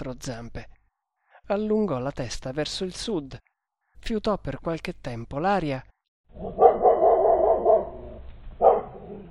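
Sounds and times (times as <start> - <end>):
speech: 0.1 - 0.7, 1.5 - 6.6
dog barking plaintively: 6.4 - 9.2.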